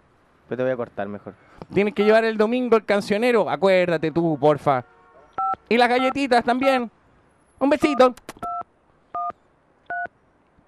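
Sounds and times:
speech: 0:00.5 - 0:05.0, 0:05.6 - 0:07.0, 0:07.6 - 0:08.3
dual-pitched touch-tone telephone beeps: 0:05.4 - 0:05.6, 0:09.2 - 0:10.1.

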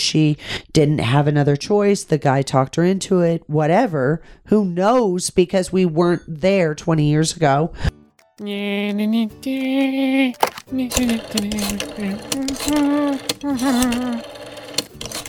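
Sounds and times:
speech: 0:00.1 - 0:14.4
old rotary phone being dialed: 0:10.4 - 0:15.2
humming voice-like tone: 0:11.9 - 0:14.3.

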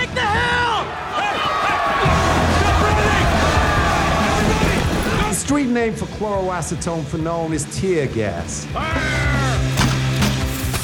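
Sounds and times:
dense crowd roaring with overlapping shouts and yelling: 0:00.0 - 0:05.7, 0:08.7 - 0:09.8
speech: 0:05.6 - 0:09.2.

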